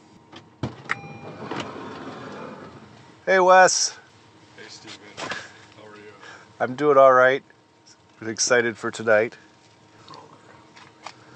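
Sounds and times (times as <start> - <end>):
low steady hum: 0.0 - 11.3
solid car door thunk: 0.6 - 1.7
speech: 3.3 - 4.0, 6.6 - 7.5, 8.2 - 9.4.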